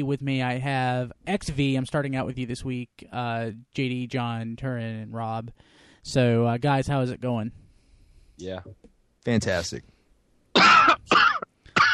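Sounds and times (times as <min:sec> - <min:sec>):
speech: 0:00.0 - 0:07.6, 0:08.4 - 0:09.9
unwell person coughing harshly: 0:10.6 - 0:11.9.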